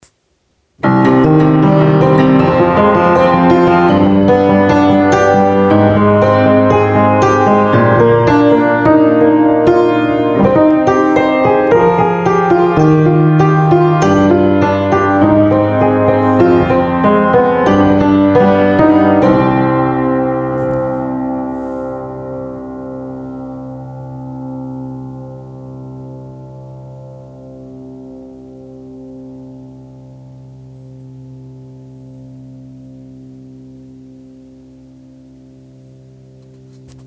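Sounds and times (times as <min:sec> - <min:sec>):
piano riff: 0:00.8 - 0:37.0.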